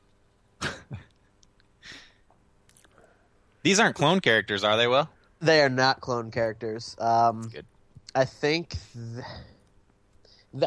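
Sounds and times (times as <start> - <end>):
person coughing sharply: 0.6 - 1.0
soft breathy exhale or throat sound: 1.8 - 2.1
speech: 3.6 - 9.5.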